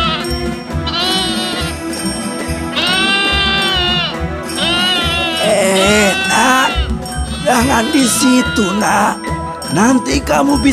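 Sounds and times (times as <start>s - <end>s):
loose male goat bleating at a market: 0.0s - 1.8s, 2.7s - 9.2s
speech: 7.7s - 10.7s.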